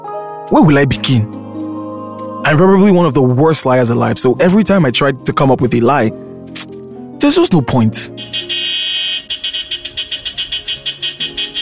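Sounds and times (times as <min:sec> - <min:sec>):
speech: 0:00.5 - 0:01.4, 0:02.4 - 0:08.6
car horn honking: 0:08.2 - 0:11.5.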